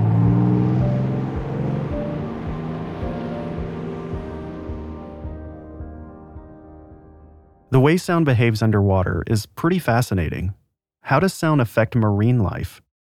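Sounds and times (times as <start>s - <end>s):
motors of passing ships such as a cruise liner or trawler underwater: 0.0s - 6.3s
speech: 7.8s - 12.8s.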